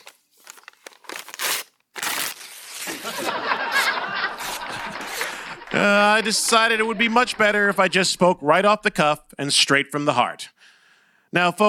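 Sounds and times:
sheet of paper being crumpled: 0.0s - 5.1s
laughter: 2.9s - 8.9s
speech: 5.8s - 10.6s, 11.3s - 11.6s.

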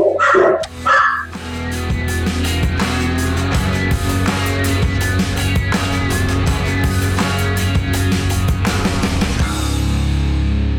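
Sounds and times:
dog barking: 0.0s - 1.3s
upbeat music with a rhythmic beat: 0.0s - 10.6s.

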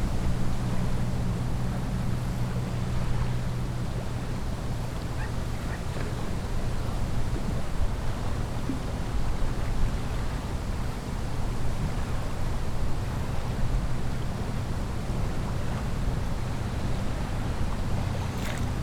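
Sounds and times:
lake water washing: 0.0s - 18.8s
splashes: 17.9s - 18.8s.

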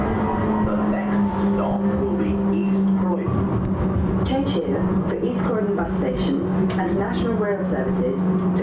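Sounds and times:
low tram motor hum: 0.2s - 8.6s
voices: 0.3s - 8.6s
moving tram rumbling: 4.3s - 8.6s.

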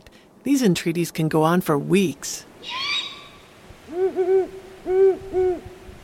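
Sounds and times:
speech: 0.4s - 2.9s, 4.0s - 5.8s
female Great Horned Owl hooting: 2.6s - 6.0s.

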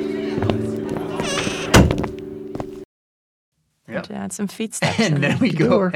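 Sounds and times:
heavy door shutting: 1.0s - 2.2s
speech: 4.0s - 5.9s.

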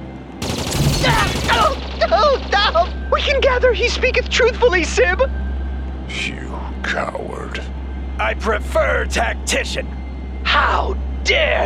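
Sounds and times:
rapid gunfire from automated sentry guns: 0.4s - 2.6s
speech: 2.1s - 5.4s, 6.2s - 11.6s.

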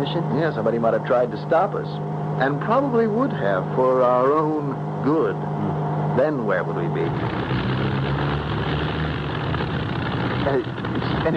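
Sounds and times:
speech: 0.0s - 8.3s, 10.5s - 11.3s
propeller aircraft engine running rough: 0.0s - 11.3s.

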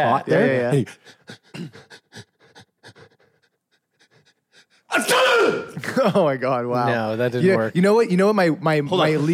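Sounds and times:
speech: 0.0s - 1.9s, 5.0s - 9.3s
person panting working up to a fake sneeze: 0.9s - 4.9s.

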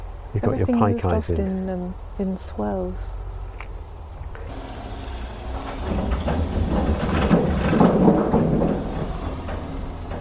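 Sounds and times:
speech: 0.4s - 3.2s
car rumbling across a canal swing bridge: 4.2s - 10.2s.

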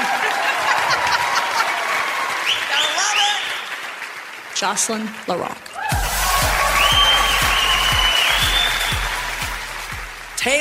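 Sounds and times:
laughter: 0.0s - 1.9s
crowd cheering loudly: 0.0s - 4.1s, 5.7s - 10.4s
speech: 4.6s - 5.7s.

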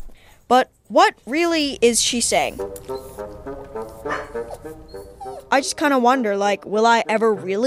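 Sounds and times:
speech: 0.5s - 3.6s, 5.5s - 7.6s
dog whining: 2.9s - 5.9s.

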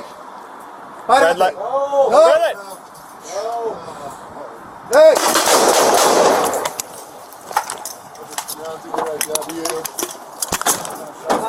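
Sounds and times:
speech: 1.1s - 4.3s, 4.9s - 6.6s, 8.6s - 10.0s
gunshots during an armed confrontation: 5.0s - 6.9s.

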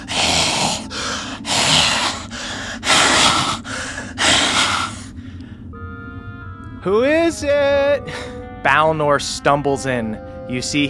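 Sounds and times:
person imitating raspy labored breathing with their voice: 0.0s - 5.1s
speech: 6.8s - 10.8s.

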